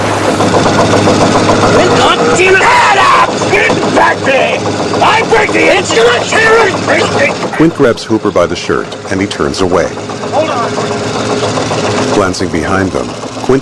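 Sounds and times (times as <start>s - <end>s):
boat engine straining at maximum RPM: 0.0s - 13.6s
raised voices shouting over the engine: 1.8s - 7.5s
speech: 5.8s - 10.9s, 12.2s - 13.6s.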